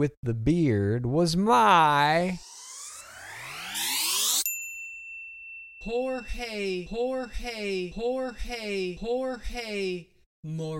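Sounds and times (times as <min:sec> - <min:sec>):
speech: 0:00.0 - 0:02.5, 0:05.8 - 0:10.7
rising whooshing sweep: 0:02.3 - 0:04.5
starting bell ding: 0:04.3 - 0:08.8.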